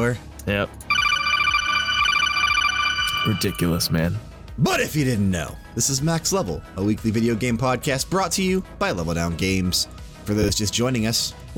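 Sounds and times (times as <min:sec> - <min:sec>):
speech: 0:00.0 - 0:00.9, 0:03.2 - 0:11.5
phone ringtone: 0:00.8 - 0:04.1.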